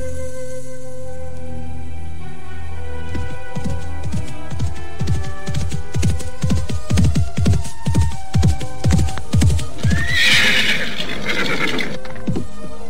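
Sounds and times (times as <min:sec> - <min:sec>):
horse hooves clopping: 0:02.9 - 0:12.8
horse whinnying: 0:09.8 - 0:12.4.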